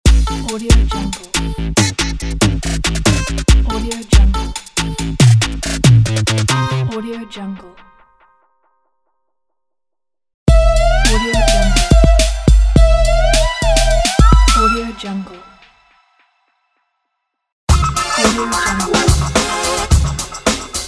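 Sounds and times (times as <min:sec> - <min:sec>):
modern hip hop logo music: 0:00.1 - 0:06.9, 0:10.5 - 0:14.8, 0:17.7 - 0:20.8.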